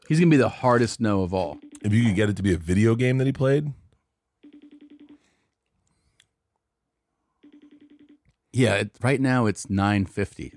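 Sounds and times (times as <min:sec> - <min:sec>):
speech: 0:00.1 - 0:03.8, 0:08.6 - 0:10.5
FaceTime call ringtone with bright electronic tones: 0:01.2 - 0:03.6, 0:04.4 - 0:05.4, 0:07.4 - 0:08.7, 0:10.3 - 0:10.5.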